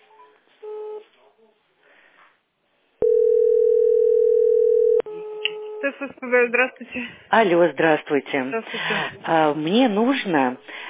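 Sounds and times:
telephone dial tone while placing a call: 3.0 - 5.1
speech: 5.8 - 10.8.

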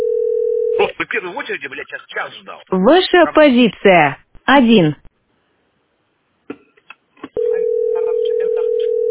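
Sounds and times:
telephone line tone: 0.0 - 0.8, 7.4 - 9.0
speech: 1.0 - 5.0.

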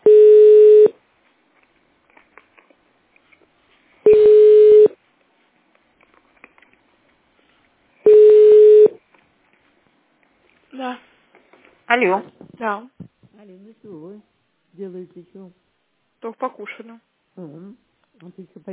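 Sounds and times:
telephone connection tone while waiting for an answer: 0.0 - 0.9, 4.1 - 4.9, 8.0 - 9.0
speech: 12.0 - 15.6, 16.2 - 18.7.

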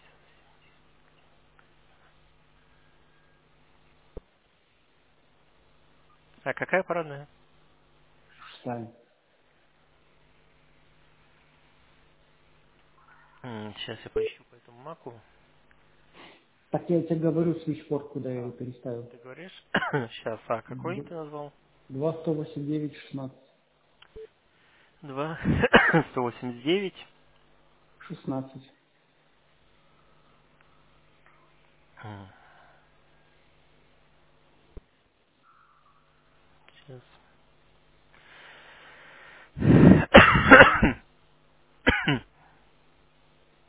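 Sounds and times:
faint noise: 0.0 - 43.6
speech: 6.4 - 7.4, 8.6 - 9.0, 13.4 - 15.3, 16.7 - 23.4, 25.0 - 27.1, 28.1 - 28.7, 32.0 - 32.4, 36.9 - 37.1, 42.1 - 42.3
person coughing from a lingering illness: 19.7 - 20.1, 25.4 - 26.2, 39.6 - 41.1, 41.9 - 42.4
throat clearing: 25.4 - 26.1, 39.7 - 41.1, 41.9 - 42.4.

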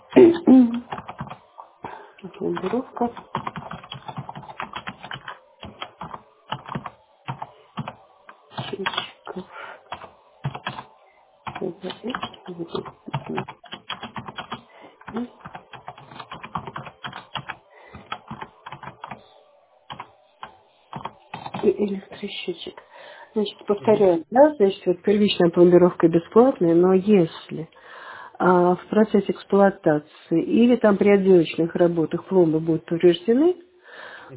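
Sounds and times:
typing on a computer keyboard: 0.8 - 1.5, 2.6 - 9.2, 9.9 - 19.2, 19.9 - 21.7
speech: 2.5 - 3.4, 23.9 - 27.8, 28.4 - 33.6.

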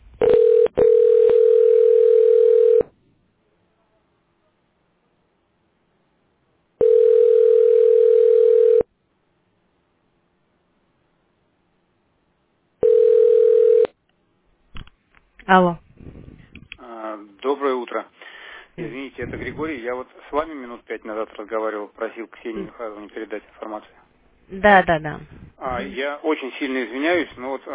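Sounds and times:
telephone line tones while a call is transferred: 0.2 - 2.9, 6.8 - 8.9, 12.8 - 13.9
speech: 15.5 - 15.8, 17.4 - 18.1, 18.8 - 27.7.

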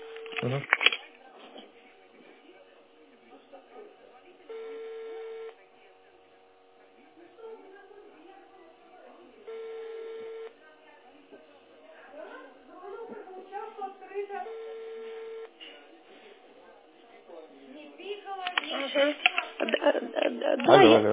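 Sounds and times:
room noise: 0.0 - 21.1
voices: 0.0 - 21.1
speech: 0.4 - 0.8
long electronic beeps of a telephone call being dialed: 4.5 - 5.5, 9.5 - 10.5, 14.5 - 15.5.

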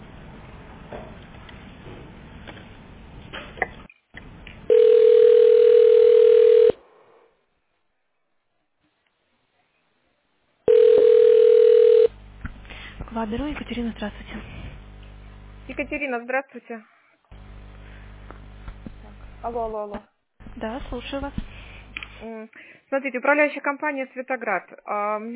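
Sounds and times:
telephone line tone while a call is transferred: 4.7 - 6.8, 10.7 - 12.1
speech: 13.2 - 14.6, 15.7 - 16.9, 19.4 - 21.5, 22.2 - 25.3.

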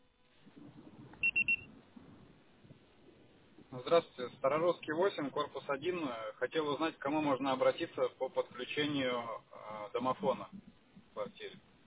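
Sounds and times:
faint low hiss: 0.0 - 11.8
high-pitched electronic voicemail beeps after a recorded phone message: 1.2 - 1.7
speech: 3.8 - 11.6.

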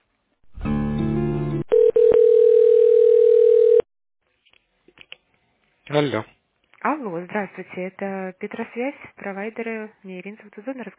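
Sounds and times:
telephone ringback tone during call transfer to a mobile phone: 1.7 - 3.9
speech: 5.9 - 10.9.

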